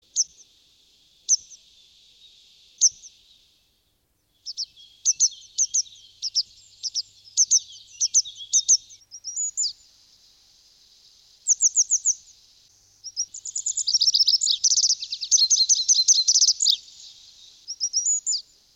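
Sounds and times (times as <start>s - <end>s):
Lavandera cascadena calling: 4.4s - 18.7s.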